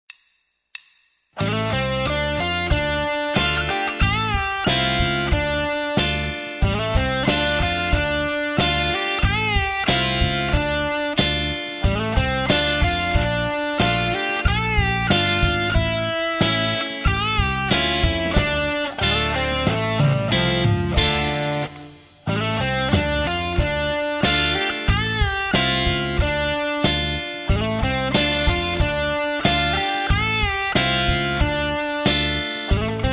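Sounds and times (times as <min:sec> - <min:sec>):
bass guitar playing: 0:01.4 - 0:33.1.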